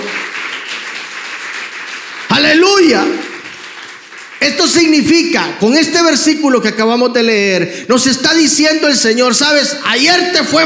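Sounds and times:
crowd applause: 0.0 - 5.1
speech: 4.4 - 10.6.

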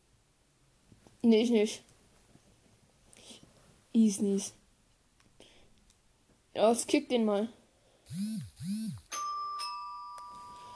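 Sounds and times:
speech: 1.2 - 1.9, 4.0 - 4.6, 6.6 - 9.0
electronic doorbell chime: 8.9 - 10.7
doorbell click: 9.1 - 10.7.

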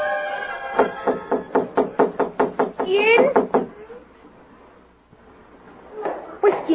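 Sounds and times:
loud knocking on a service door: 0.8 - 3.7
voice: 2.8 - 4.0, 6.0 - 6.7.

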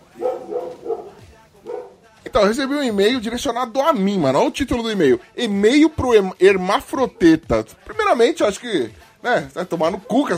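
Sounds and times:
dog barking: 0.0 - 2.1
speech: 2.3 - 10.3.

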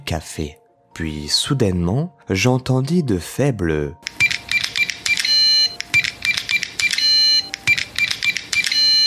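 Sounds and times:
speech: 0.1 - 4.1
electronic keypad button beeps on a café's hidden back door lock: 4.1 - 9.0.

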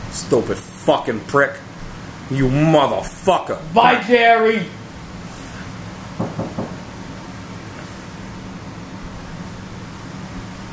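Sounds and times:
speech: 0.2 - 1.7, 2.3 - 4.8
soft knocks: 6.2 - 6.8.

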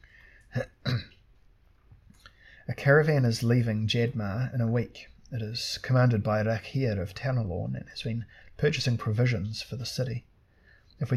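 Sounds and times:
speech: 0.5 - 0.7, 2.8 - 10.3, 11.0 - 11.1
throat clearing: 0.5 - 1.2.

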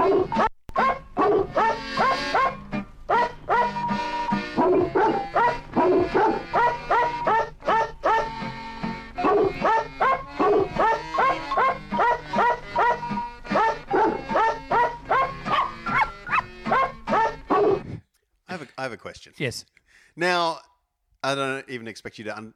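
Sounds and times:
dog barks edited into a tune: 0.0 - 8.5, 9.2 - 17.8
speech: 19.2 - 20.6, 21.2 - 22.5.

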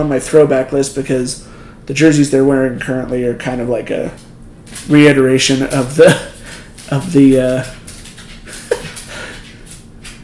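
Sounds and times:
speech: 0.0 - 6.3, 6.9 - 7.8
quiet room hum: 0.0 - 10.2
dog's nails clicking on a hard floor: 4.2 - 10.2.

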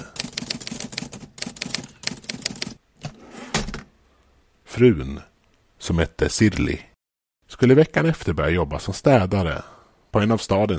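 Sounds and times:
typewriter keys clacking: 0.0 - 2.8
typewriter carriage-like thunk: 3.0 - 3.9
speech: 4.8 - 6.9, 7.5 - 10.7.

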